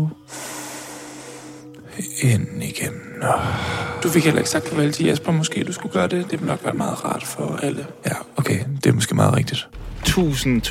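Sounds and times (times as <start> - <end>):
deep slow breath taken during meditation: 0.2 - 1.9, 2.9 - 4.1
speech: 2.2 - 10.6.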